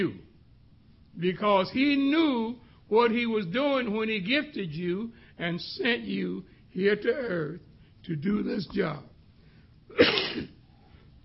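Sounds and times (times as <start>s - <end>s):
speech: 0.0s - 0.2s, 1.2s - 9.1s
person coughing: 9.9s - 10.7s.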